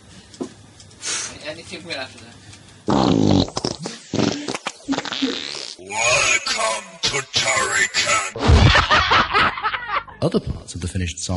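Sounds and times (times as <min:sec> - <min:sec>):
speech: 0:01.5 - 0:02.3, 0:05.9 - 0:09.6, 0:10.2 - 0:11.3
long drawn-out fart: 0:02.9 - 0:05.9
laughter: 0:08.3 - 0:10.2.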